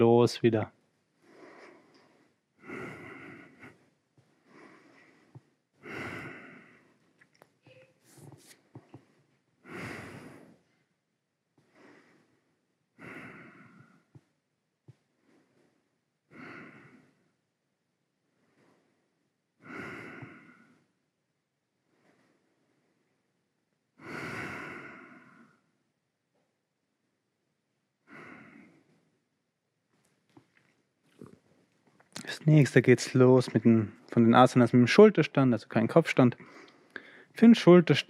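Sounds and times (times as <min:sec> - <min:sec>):
speech: 0:00.0 - 0:00.8, 0:32.5 - 0:36.7, 0:37.4 - 0:38.0
slow relaxed breathing during a yoga relaxation pause: 0:01.1 - 0:17.5, 0:18.2 - 0:21.2, 0:21.8 - 0:23.4, 0:24.0 - 0:26.5, 0:28.0 - 0:29.3, 0:36.4 - 0:37.4.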